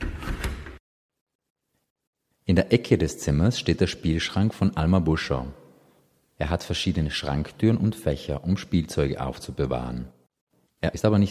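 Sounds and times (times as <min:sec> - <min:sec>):
window door pulled shut by its handles: 0:00.0 - 0:00.8
speech: 0:02.5 - 0:05.6, 0:06.4 - 0:10.2, 0:10.8 - 0:11.2.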